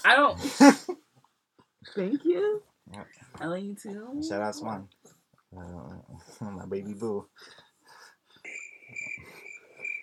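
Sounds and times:
speech: 0.0 - 1.0, 1.8 - 7.6
crickets chirping sound effect: 8.4 - 10.0.

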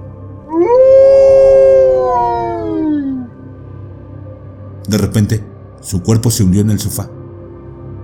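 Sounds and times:
man howling in rage and pain: 0.5 - 3.4
speech: 4.9 - 7.2.

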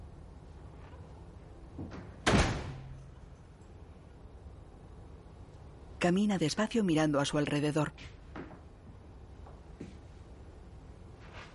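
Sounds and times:
house door opening and closing slowly: 1.8 - 3.2
speech: 6.0 - 8.2.

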